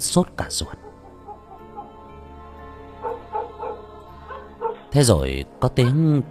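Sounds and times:
speech: 0.0s - 0.9s, 4.9s - 6.2s
dogs barking in the distance at a market: 0.4s - 5.2s.

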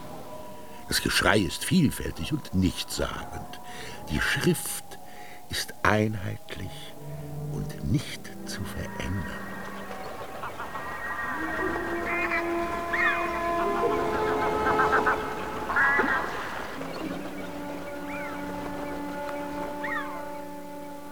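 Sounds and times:
geese honking: 0.0s - 21.0s
steady sustained tones: 0.0s - 21.0s
speech: 0.9s - 4.9s, 5.5s - 9.5s.

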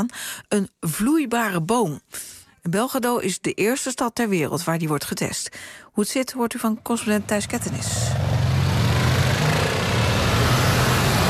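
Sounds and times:
speech: 0.0s - 8.5s
evening rush-hour traffic of many old cars in central Belgrado: 6.8s - 11.2s.

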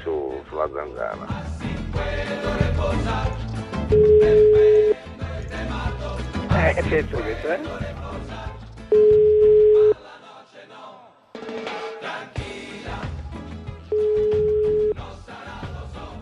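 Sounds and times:
speech: 0.1s - 4.8s, 6.6s - 8.0s
loud music: 1.1s - 10.0s, 11.4s - 16.2s
telephone ringing in a radio studio: 3.9s - 5.0s, 8.9s - 10.0s, 13.9s - 15.0s.

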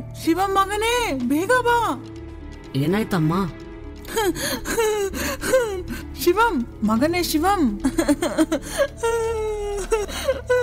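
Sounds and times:
speech: 0.2s - 10.6s
woman crying with sobbing wails and whimpers: 4.0s - 6.4s, 7.7s - 10.6s.

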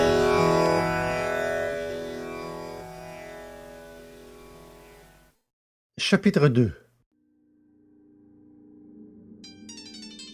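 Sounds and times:
steady low tonal hum: 0.0s - 5.3s, 7.4s - 10.3s
speech: 6.0s - 6.8s
mobile phone ringtone playing opening bars of a concerto: 9.4s - 10.3s.

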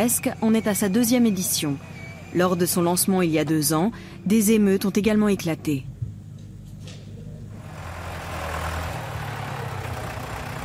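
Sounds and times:
speech: 0.0s - 5.9s
tractor engine running: 0.0s - 10.6s.

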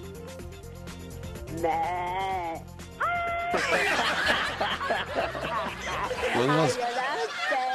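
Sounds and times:
speech: 1.5s - 2.7s, 3.7s - 7.1s
human voice imitating sheep bleats: 1.5s - 3.4s
chuckling laughter: 3.5s - 7.7s.

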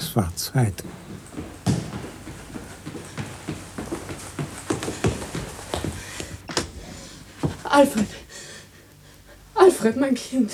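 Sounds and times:
horse hooves clopping as a horse-drawn carriage rattles up and stops: 0.0s - 7.8s
speech: 0.2s - 1.2s, 7.8s - 8.2s, 9.7s - 10.5s.

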